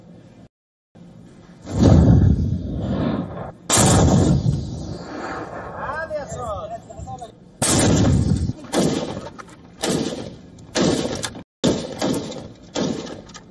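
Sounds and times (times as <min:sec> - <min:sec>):
heavy booming explosions: 0:01.6 - 0:06.5, 0:07.6 - 0:13.2.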